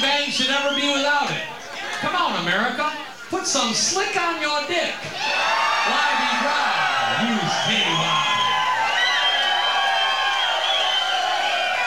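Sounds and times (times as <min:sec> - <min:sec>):
large crowd roaring and cheering: 0:00.0 - 0:11.8
speech: 0:02.0 - 0:08.4
many overlapping voices whooping: 0:05.1 - 0:11.8.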